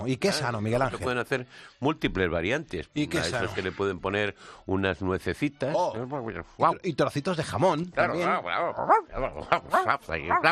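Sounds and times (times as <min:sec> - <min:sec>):
speech: 0:00.0 - 0:10.5
man imitating a small dog barking in a studio: 0:09.7 - 0:10.5.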